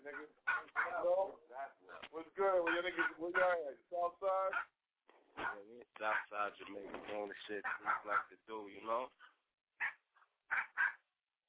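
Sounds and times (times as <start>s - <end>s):
small dog barking sharply: 0.0s - 1.1s, 1.9s - 3.6s, 5.4s - 6.3s, 7.6s - 8.3s, 9.8s - 11.0s
faint dog yip: 0.1s - 1.1s, 2.7s - 3.5s, 7.7s - 8.3s, 9.8s - 11.0s
speech: 6.7s - 9.2s.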